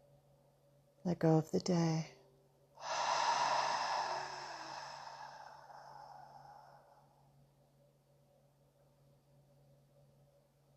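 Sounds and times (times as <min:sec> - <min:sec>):
speech: 0:01.0 - 0:02.2
slow deep breath drawn in during a guided relaxation exercise: 0:02.8 - 0:07.4.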